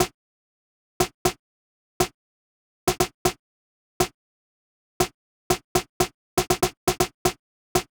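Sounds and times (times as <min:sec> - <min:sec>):
breakbeat snare drum: 0:02.9 - 0:03.3, 0:05.5 - 0:07.9.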